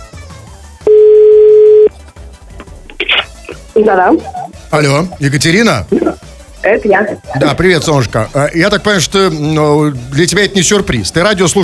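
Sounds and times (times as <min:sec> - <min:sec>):
steady telephone dialing tone: 0:00.8 - 0:01.9
speech: 0:03.8 - 0:11.6.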